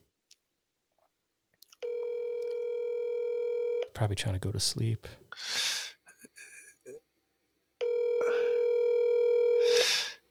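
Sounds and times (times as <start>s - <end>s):
telephone ringing tone on an outgoing call: 1.8s - 3.9s, 7.8s - 9.9s
speech: 4.0s - 5.7s.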